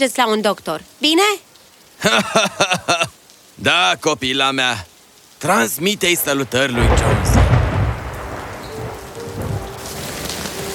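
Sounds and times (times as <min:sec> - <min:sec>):
speech: 0:00.0 - 0:07.3
hail and rain pattering in a hailstorm over a town at night: 0:00.0 - 0:10.7
laughter: 0:02.0 - 0:03.1
deep low rumbling of a hailstorm: 0:06.8 - 0:09.8.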